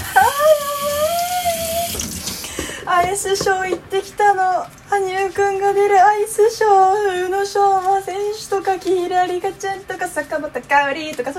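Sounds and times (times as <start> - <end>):
water running from a tap while washing hands: 0.0 - 2.5
speech: 3.2 - 11.3.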